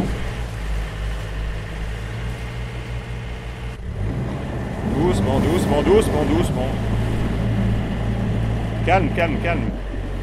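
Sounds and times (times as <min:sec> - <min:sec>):
traditional gulf boat engine running at low revs and reversing: 0:00.0 - 0:10.2
speech: 0:05.3 - 0:07.0, 0:08.8 - 0:09.8.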